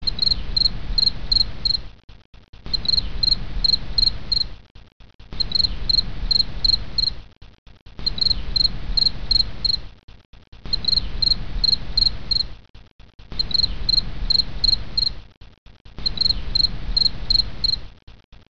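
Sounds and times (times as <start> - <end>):
crickets chirping: 0.0 - 1.8, 2.7 - 4.5, 5.4 - 7.2, 8.0 - 9.8, 10.7 - 12.5, 13.4 - 15.2, 16.0 - 17.8.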